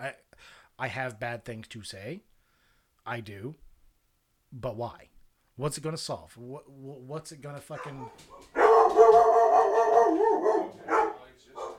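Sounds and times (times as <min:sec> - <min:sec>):
speech: 0:00.0 - 0:00.2, 0:00.8 - 0:02.3, 0:03.1 - 0:03.7, 0:04.5 - 0:08.6
dog barking: 0:07.7 - 0:11.7.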